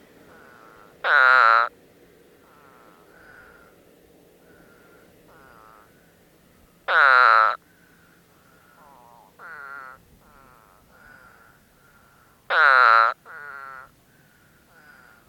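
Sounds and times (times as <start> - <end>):
Eastern Spadefoot toad calling: 0.3 - 1.7, 4.4 - 6.0, 6.9 - 7.7, 8.7 - 15.2.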